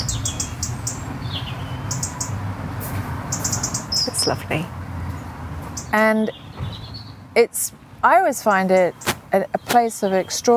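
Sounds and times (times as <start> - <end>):
birds chirping in an urban garden: 0.0 - 2.4, 3.3 - 7.3, 8.0 - 10.5
city traffic hum: 0.0 - 10.5
speech: 4.2 - 4.8, 5.9 - 6.4, 7.4 - 10.5.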